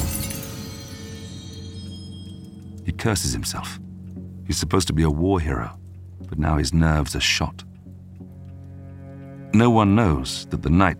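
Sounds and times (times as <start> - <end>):
drinking glass smashing on stone hearth: 0.0 - 2.5
speech: 2.9 - 3.8, 4.5 - 7.7, 9.5 - 10.9.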